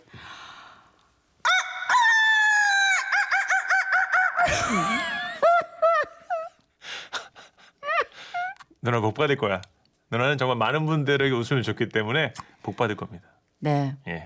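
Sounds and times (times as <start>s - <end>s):
person imitating rooster crowing as a wake-up alarm call: 1.4s - 5.0s
laughter: 3.0s - 6.6s
speech: 8.9s - 14.2s.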